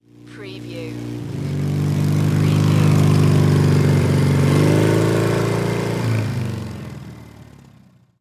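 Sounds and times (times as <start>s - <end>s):
motorcycle passing by: 0.0s - 8.1s.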